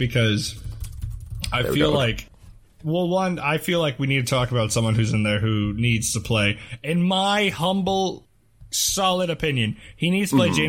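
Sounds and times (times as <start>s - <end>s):
speech: 0.0s - 0.7s, 1.5s - 10.6s
rapid typing on a computer keyboard: 0.5s - 1.6s.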